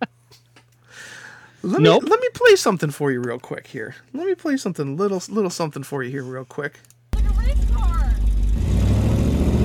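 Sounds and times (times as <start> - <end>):
speech: 1.6 - 6.9
fifth-generation Camaro ZL1 engine with headers rumbling at idle: 7.2 - 9.6.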